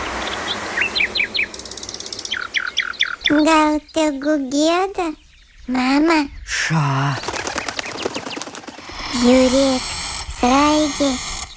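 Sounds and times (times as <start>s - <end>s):
small birds singing in chirps and trills: 0.0s - 11.5s
speech: 3.3s - 7.3s, 9.1s - 11.3s.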